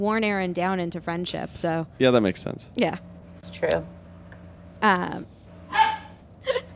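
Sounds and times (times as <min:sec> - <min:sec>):
speech: 0:00.0 - 0:04.0, 0:04.8 - 0:05.4
dog barking: 0:05.7 - 0:06.2.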